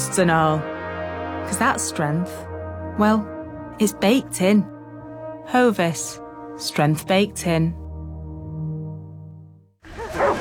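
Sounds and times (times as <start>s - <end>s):
sustained low droning tone: 0.0s - 9.5s
speech: 0.2s - 0.7s, 1.5s - 4.7s, 5.5s - 7.8s
dog barking or yelping: 9.9s - 10.3s.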